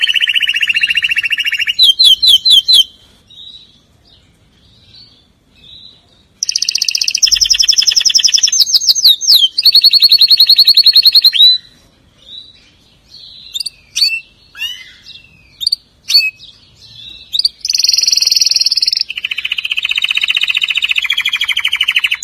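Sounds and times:
canary singing with rapid trills and swooping slurs: 0.0 - 22.2.

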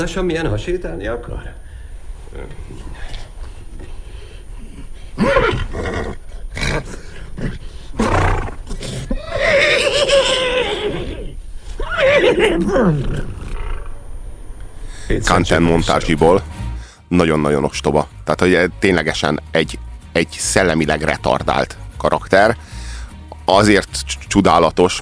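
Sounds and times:
speech: 0.0 - 1.6, 2.3 - 3.1, 5.2 - 6.2, 12.2 - 13.4, 15.1 - 22.7, 23.5 - 25.0
person imitating a thirsty horse's whinny: 5.2 - 6.2, 8.0 - 13.4.

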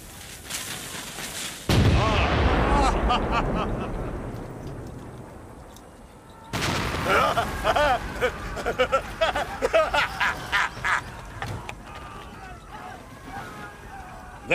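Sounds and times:
crackling crumbling debris and scattered impacts: 0.0 - 14.5
heavy cannon blast destroying barracks: 1.7 - 9.7
rumbling roar of barracks collapsing: 1.7 - 14.5
laughter: 2.0 - 4.2, 7.0 - 14.5.

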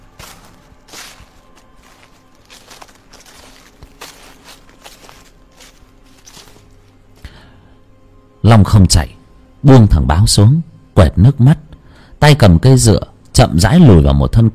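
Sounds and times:
footsteps through dry leaves on a forest floor: 0.0 - 7.5
speech: 8.5 - 11.6, 12.2 - 14.5.

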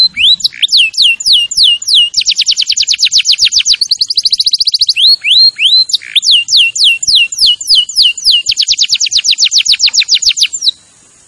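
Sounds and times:
canary singing trills and whistled slurs: 0.0 - 10.9.

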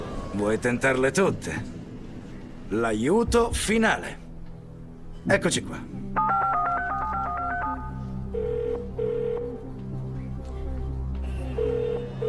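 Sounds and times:
low musical bed: 0.0 - 12.2
speech: 0.4 - 1.8, 2.7 - 4.2, 5.2 - 6.2
telephone ringing tones: 6.2 - 9.7, 11.6 - 12.2.

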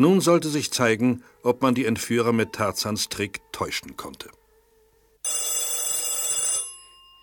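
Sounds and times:
speech: 0.0 - 4.4
telephone bell ringing: 5.2 - 7.2.

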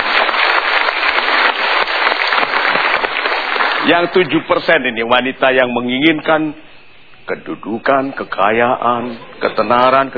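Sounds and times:
audience applause: 0.0 - 4.3
speech: 3.9 - 6.7, 7.3 - 10.1.

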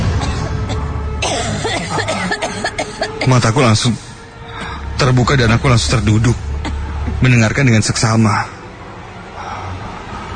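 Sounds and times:
person coughing just outside a bedroom door: 0.0 - 3.3, 6.6 - 7.2
steady noisy background: 0.0 - 10.3
speech: 3.2 - 4.1, 5.0 - 6.5, 7.2 - 8.6.

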